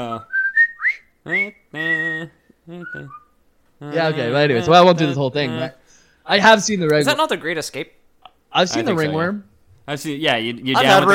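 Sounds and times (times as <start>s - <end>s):
speech: 0.0s - 0.3s, 1.2s - 3.2s, 3.8s - 11.1s
person whistling a tune from a movie: 0.2s - 3.3s
person humming: 1.3s - 3.2s, 3.8s - 5.8s.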